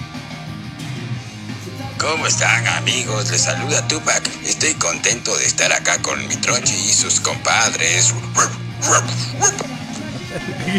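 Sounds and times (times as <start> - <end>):
speech: 2.0 - 10.7
laughter: 2.1 - 10.7
half-asleep dog barking in yips: 7.8 - 10.1
softer whiny dog vocalizations: 8.1 - 10.1.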